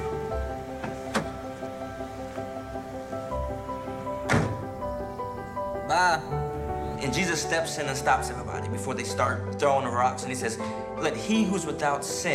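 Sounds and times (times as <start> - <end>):
door opened with dull thuds: 0.0 - 2.5, 3.4 - 5.2
steady droning musical background: 0.0 - 12.3
speech: 7.0 - 12.3.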